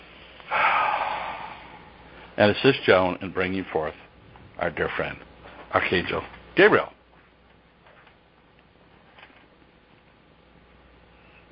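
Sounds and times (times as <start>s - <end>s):
deep inhale taken during a guided group session: 0.2s - 2.4s
speech: 2.4s - 4.0s, 4.6s - 7.0s.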